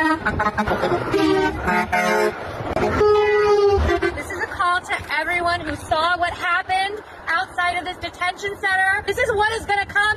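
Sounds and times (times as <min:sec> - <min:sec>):
passing car horns honking: 0:00.0 - 0:04.7
busy street noise: 0:00.0 - 0:10.1
speech: 0:00.2 - 0:02.5, 0:08.0 - 0:10.1.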